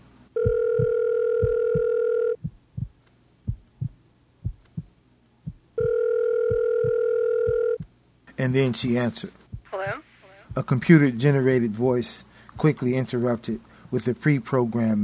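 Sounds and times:
telephone ringing in long steady electronic tones: 0.4 - 2.4, 5.8 - 7.8
slow loud heartbeat thumping: 0.4 - 8.0, 9.5 - 10.7
speech: 8.4 - 9.4, 10.6 - 15.0.

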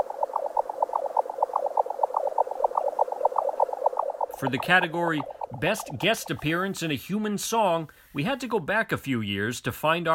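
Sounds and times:
Eurasian jack snipe display song from a bog in Sweden: 0.8 - 6.6
speech: 4.4 - 10.1.

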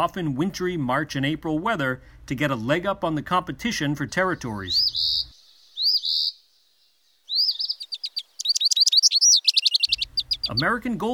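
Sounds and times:
speech: 0.0 - 5.3, 10.5 - 11.1
eastern phoebe buzzy call and high chirps and trills: 4.0 - 10.7.

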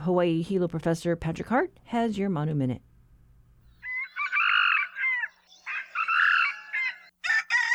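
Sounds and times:
speech: 0.0 - 2.9
red junglefowl crowing: 3.8 - 7.7
red junglefowl sharp cackling: 3.8 - 7.7.

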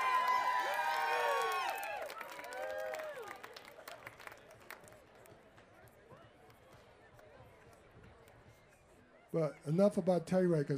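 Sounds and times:
audience cheering and whooping: 0.0 - 3.6
audience applauding: 0.0 - 5.4
speech: 9.3 - 10.7.

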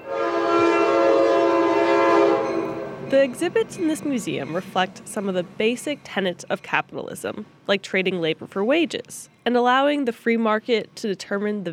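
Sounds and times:
train whistle blowing as a train passes along the Oakland waterfront: 0.0 - 3.0
speech: 3.1 - 11.7.

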